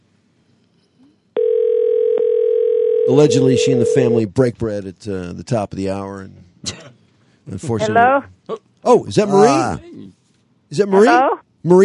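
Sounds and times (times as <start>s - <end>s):
steady electronic telephone tone: 1.4s - 4.2s
speech: 3.1s - 6.9s, 7.5s - 11.8s.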